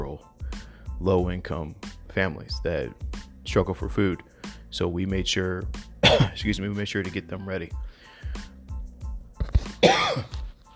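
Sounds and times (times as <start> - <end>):
speech: 1.0 - 8.5
person coughing harshly with a raspy hack: 6.0 - 6.4, 9.6 - 10.4.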